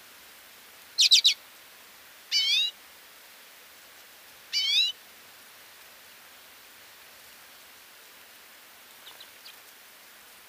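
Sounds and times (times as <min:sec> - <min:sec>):
common redpoll Acanthis flammea calls: 0:01.0 - 0:01.4.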